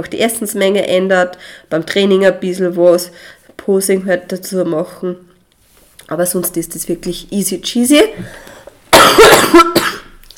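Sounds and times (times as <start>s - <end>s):
speech: 0.0s - 5.3s, 6.1s - 9.8s
harsh coughing: 8.9s - 10.2s.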